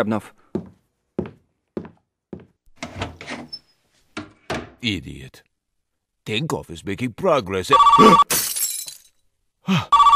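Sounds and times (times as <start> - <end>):
speech: 0.0 - 0.4, 4.8 - 5.5, 6.3 - 8.5
premier's telephone ringing in electronic trills: 7.7 - 8.2, 9.9 - 10.1.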